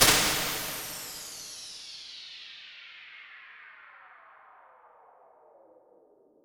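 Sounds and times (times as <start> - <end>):
large reverb: 0.0 - 1.6.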